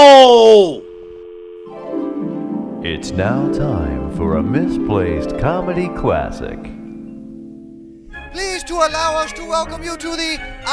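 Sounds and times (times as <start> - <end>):
person shouting on a phone call: 0.0 - 0.8
telephone dial tone: 0.8 - 1.7
speech: 3.0 - 6.8, 8.4 - 10.7.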